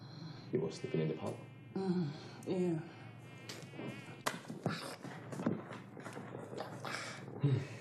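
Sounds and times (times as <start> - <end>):
mosquito whining: 0.0 - 5.4
speech: 0.5 - 3.0.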